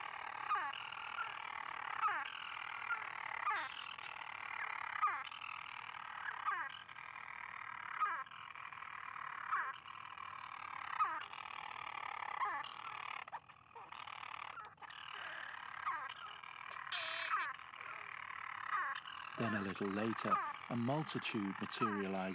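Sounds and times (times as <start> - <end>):
single wild European Storm Petrel calling at the monastery on Skellig Michael: 0.0 - 22.3
speech: 19.5 - 22.3.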